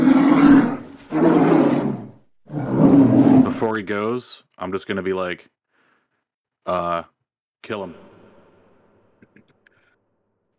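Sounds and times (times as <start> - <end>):
animal roaring with a deep rumbling growl: 0.0 - 3.7
speech: 3.6 - 5.6, 6.6 - 8.1.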